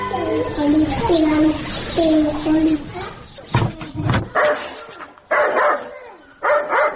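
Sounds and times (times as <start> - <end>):
people talking at a village gathering: 0.1 - 6.3
dog barking: 4.3 - 6.9.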